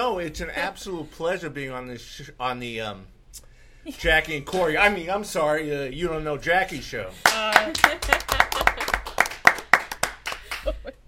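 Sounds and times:
speech: 0.1 - 8.4
laughter: 7.2 - 9.3, 10.4 - 11.0
hands clapping: 7.2 - 10.9.

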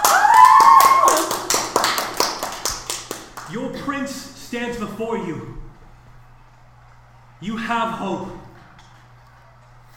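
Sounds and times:
crowd whooping: 0.0 - 1.6
crowd clapping and cheering: 0.0 - 3.6
speech: 3.9 - 5.7, 7.4 - 8.4.

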